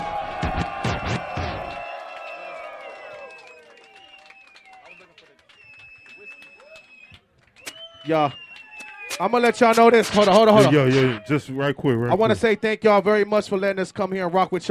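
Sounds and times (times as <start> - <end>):
people shouting in a concert crowd: 0.0 - 3.3, 9.5 - 11.5
live concert crowd cheering and roaring: 0.0 - 11.6
crowd whistles: 0.8 - 10.2
speech: 8.1 - 8.4, 9.2 - 14.6.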